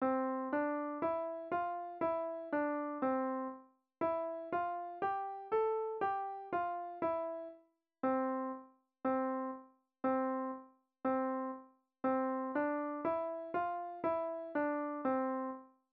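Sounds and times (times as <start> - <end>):
piano playing in C major: 0.0 - 7.5, 8.1 - 15.6.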